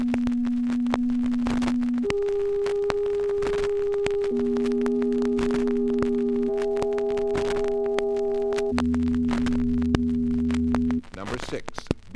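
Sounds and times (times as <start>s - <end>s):
264 Hz sine tone: 0.0s - 11.0s.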